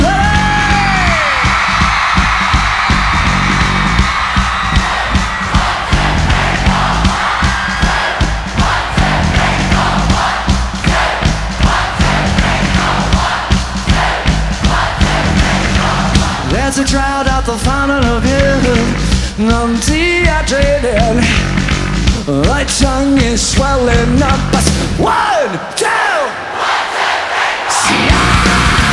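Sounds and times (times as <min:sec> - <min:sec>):
huge concert crowd screaming and cheering: 0:00.0 - 0:17.1, 0:25.0 - 0:28.9
thumping music beats: 0:00.0 - 0:25.4, 0:27.9 - 0:28.9
speech: 0:22.3 - 0:26.0.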